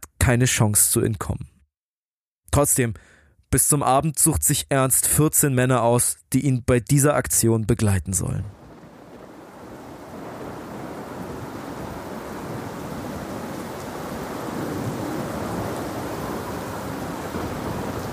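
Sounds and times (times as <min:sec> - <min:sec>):
speech: 0:00.3 - 0:01.6, 0:02.6 - 0:08.6
heavy rain pouring down on a trench: 0:08.5 - 0:18.1.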